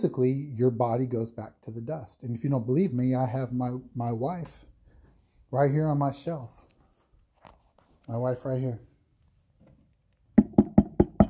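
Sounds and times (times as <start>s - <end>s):
speech: 0.0s - 4.7s, 5.5s - 6.7s, 8.1s - 8.9s
knocks on a hollow cremation urn holding a person's ashes: 10.4s - 11.2s.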